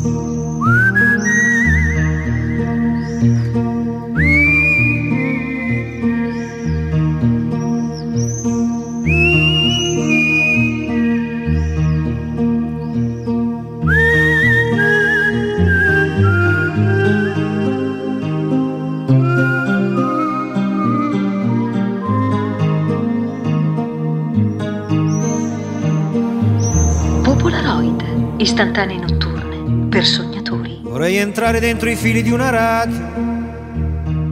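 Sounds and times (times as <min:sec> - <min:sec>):
steady instrumental backing music: 0:00.0 - 0:34.3
person whistling a tune in sliding high notes: 0:00.5 - 0:02.4, 0:04.2 - 0:06.2, 0:09.0 - 0:11.3, 0:13.9 - 0:17.2, 0:19.2 - 0:22.8
speech: 0:30.0 - 0:30.2, 0:31.0 - 0:33.2.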